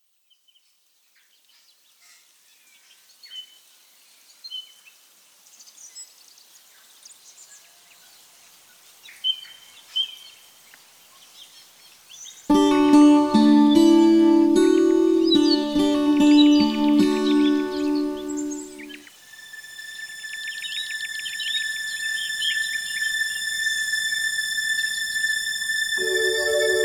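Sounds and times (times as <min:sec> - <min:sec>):
ambient keyboards: 0:12.5 - 0:19.0, 0:21.5 - 0:26.8.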